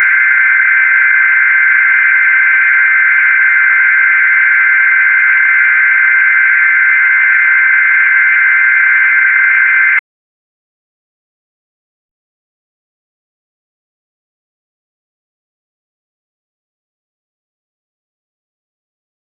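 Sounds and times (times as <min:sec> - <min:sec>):
aircraft emergency alarm: 0:00.0 - 0:10.0.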